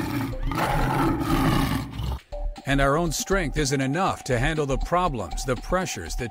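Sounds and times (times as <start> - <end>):
lion roaring: 0.0 - 2.2
speech: 2.7 - 6.2.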